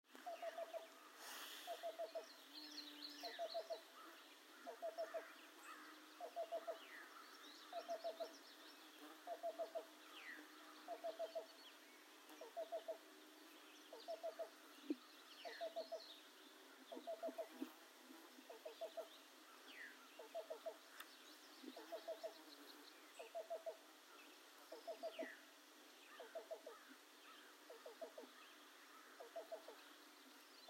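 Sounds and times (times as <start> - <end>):
Black-billed Cuckoo calling: 0.1 - 1.0, 1.7 - 7.0, 7.7 - 8.4, 9.3 - 9.9, 10.9 - 11.6, 12.4 - 13.0, 13.9 - 16.1, 16.9 - 17.8, 18.4 - 22.4, 23.2 - 23.8, 24.7 - 25.4, 26.1 - 26.9, 27.7 - 28.4, 29.2 - 29.8.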